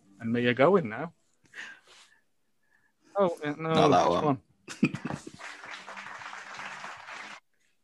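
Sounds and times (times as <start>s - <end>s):
speech: 0.3s - 1.8s, 3.2s - 5.3s
recorded crowd of children cheering and clapping: 5.3s - 7.4s.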